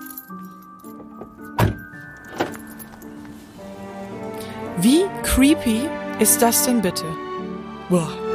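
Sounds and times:
keys jangling: 0.0 - 3.5
car being locked: 1.2 - 2.6
speech: 4.8 - 7.2, 7.9 - 8.2.

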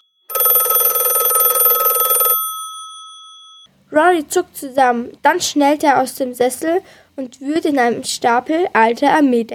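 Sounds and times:
shrill trilling bell of an old telephone ringing: 0.0 - 3.7
speech: 3.9 - 9.5.

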